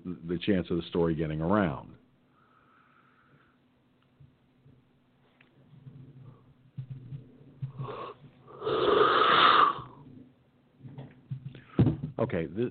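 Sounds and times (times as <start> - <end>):
speech: 0.3 - 2.0, 12.3 - 12.6
person giving a long breathy yawn: 7.8 - 10.0.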